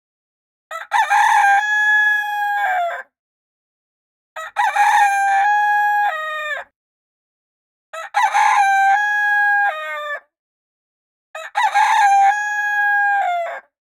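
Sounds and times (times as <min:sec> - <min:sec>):
rooster crowing: 0:00.7 - 0:03.1, 0:04.4 - 0:06.7, 0:08.0 - 0:10.3, 0:11.4 - 0:13.7.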